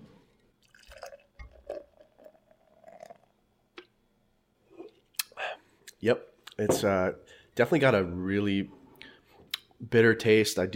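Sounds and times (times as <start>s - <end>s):
beer pouring into a glass: 0.6s - 3.5s
speech: 6.0s - 8.8s, 9.8s - 10.7s.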